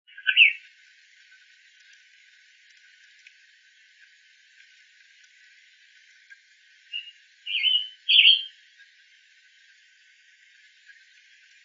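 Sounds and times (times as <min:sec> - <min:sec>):
hybrid tanager burry calls: 0:06.9 - 0:08.6.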